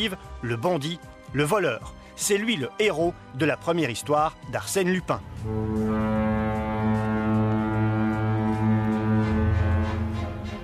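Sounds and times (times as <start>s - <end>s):
speech: 0.0s - 6.2s
transatlantic ocean liner horn blowing: 5.4s - 10.6s.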